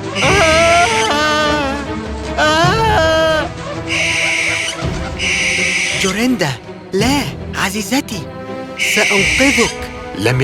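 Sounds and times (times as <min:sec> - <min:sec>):
owl screeching: 0:00.0 - 0:06.2, 0:08.8 - 0:10.0
speech: 0:06.2 - 0:10.4.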